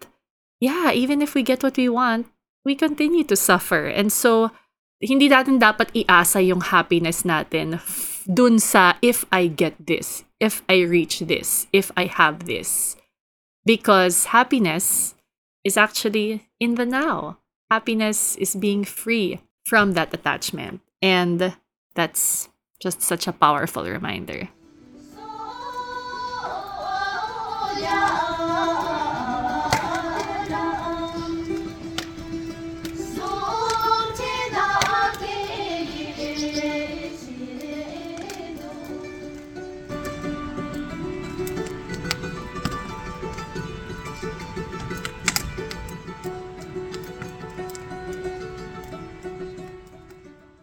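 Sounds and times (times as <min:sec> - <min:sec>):
speech: 0:00.6 - 0:13.0, 0:13.6 - 0:24.6
voices singing a traditional dance melody together: 0:24.7 - 0:39.8.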